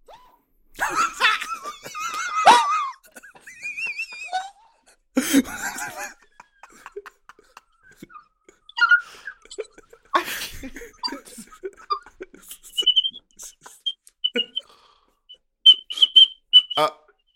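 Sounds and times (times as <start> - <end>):
laughter: 0.8 - 14.7
person whistling through her teeth: 7.9 - 9.8, 11.9 - 17.3.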